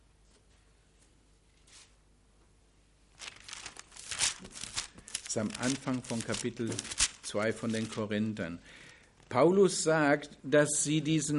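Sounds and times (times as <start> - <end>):
book pages being leafed through: 3.2 - 8.2
speech: 5.3 - 11.3.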